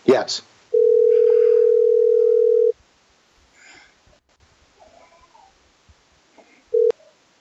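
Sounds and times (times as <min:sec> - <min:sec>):
speech: 0:00.1 - 0:00.5
outgoing phone call ringback tone: 0:00.8 - 0:02.7, 0:06.7 - 0:06.9.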